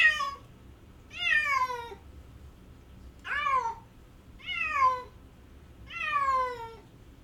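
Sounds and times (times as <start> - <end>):
cat crying with drawn-out plaintive meows: 0.0 - 0.4, 1.1 - 2.0, 3.3 - 3.8, 4.4 - 5.1, 5.9 - 6.8.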